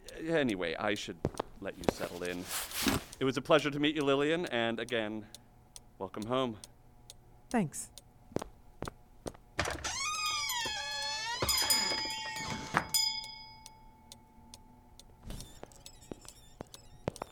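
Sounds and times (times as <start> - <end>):
speech: 0.2 - 5.4, 6.0 - 6.7, 7.5 - 8.0
sharp clicks and ticks: 3.1 - 7.2, 13.6 - 17.2
door creaking open with squeaky whine: 9.6 - 13.2, 15.2 - 17.2.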